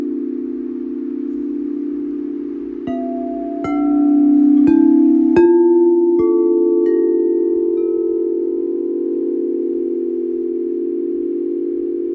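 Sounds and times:
sound bowl humming with a steady low ring: 0:00.0 - 0:12.1
bright metallic strikes on a sound bowl: 0:00.8 - 0:09.0.

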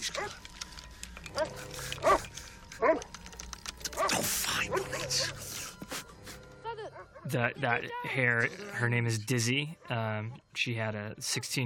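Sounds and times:
dog barking: 0:00.0 - 0:00.4, 0:01.3 - 0:03.1, 0:04.0 - 0:05.4, 0:06.9 - 0:07.3
speech: 0:07.3 - 0:11.6.

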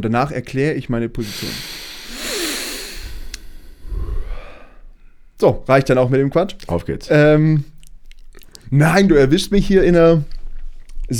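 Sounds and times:
speech: 0:00.0 - 0:01.8, 0:05.4 - 0:07.7, 0:08.7 - 0:10.4
deep breath in and out: 0:01.2 - 0:05.4.

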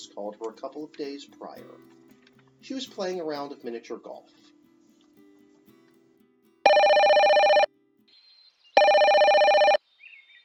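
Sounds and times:
speech: 0:00.1 - 0:02.0, 0:02.6 - 0:04.6
phone ringing with electronic trill: 0:06.7 - 0:07.7, 0:08.8 - 0:09.8.

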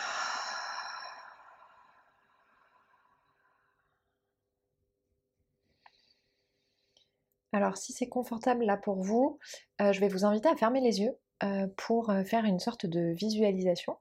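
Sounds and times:
long airy exhale during a guided relaxation exercise: 0:00.0 - 0:03.7
speech: 0:07.6 - 0:13.9.

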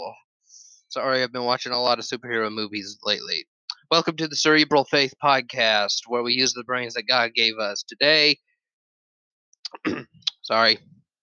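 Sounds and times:
speech: 0:00.0 - 0:08.5, 0:09.7 - 0:11.0
deep swallow: 0:09.7 - 0:10.4.

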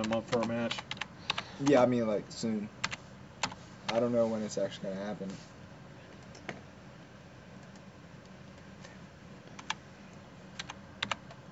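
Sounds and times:
speech: 0:00.0 - 0:01.0, 0:01.6 - 0:02.8, 0:03.9 - 0:05.5
computer keyboard typing: 0:00.0 - 0:01.8, 0:02.8 - 0:04.0, 0:07.6 - 0:08.4, 0:09.5 - 0:09.8, 0:10.6 - 0:11.4
steady hiss: 0:00.7 - 0:05.7.

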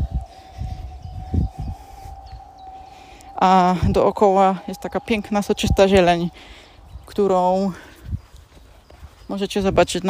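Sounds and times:
airplanes taking off, sustained engine hum: 0:00.0 - 0:07.9
low uneven rumbling gusts: 0:00.0 - 0:10.0
speech: 0:03.4 - 0:07.9, 0:09.3 - 0:10.0.

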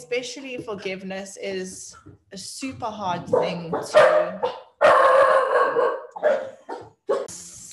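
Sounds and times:
speech: 0:00.1 - 0:04.6
dogs barking and howling excitedly: 0:03.3 - 0:07.3.

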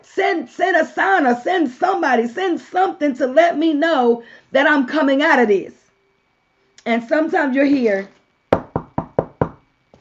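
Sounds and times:
speech: 0:00.0 - 0:05.8, 0:06.8 - 0:08.2
firm knocks on a wooden door: 0:08.5 - 0:09.6.

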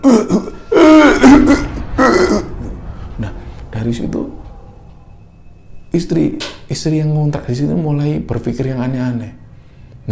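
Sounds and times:
loud strained pained coughing: 0:00.0 - 0:02.5
speech: 0:06.1 - 0:09.4.

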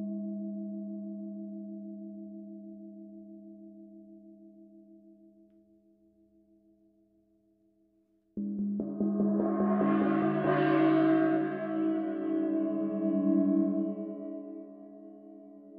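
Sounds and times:
struck gong ringing: 0:08.8 - 0:15.0.

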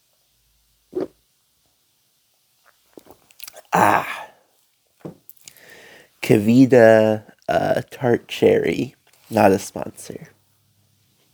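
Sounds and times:
sipping kombucha: 0:02.9 - 0:03.7
speech: 0:06.3 - 0:10.4.

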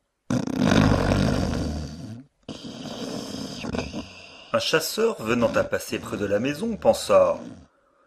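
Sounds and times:
loud rumbling snore: 0:00.3 - 0:07.7
speech: 0:04.6 - 0:07.6.

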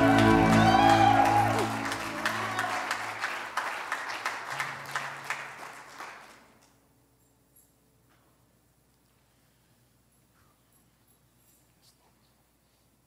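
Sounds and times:
tonal voices or music: 0:00.0 - 0:03.2
audience applauding: 0:00.0 - 0:06.6.

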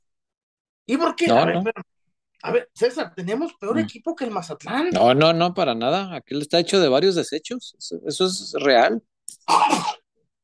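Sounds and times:
speech: 0:00.9 - 0:10.0
person sneezing: 0:09.4 - 0:10.1.

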